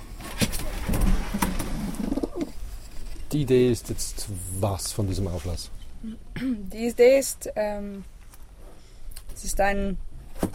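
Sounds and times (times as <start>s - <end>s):
young pigeons cooing at a training release: 0.7s - 2.7s
speech: 3.3s - 8.1s, 9.4s - 10.5s.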